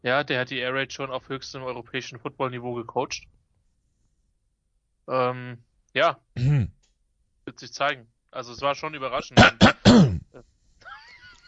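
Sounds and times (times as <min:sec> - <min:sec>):
speech: 0:00.0 - 0:03.4, 0:05.1 - 0:06.8, 0:07.5 - 0:10.5
loud throat-clearing cough: 0:06.4 - 0:06.7, 0:09.3 - 0:10.3.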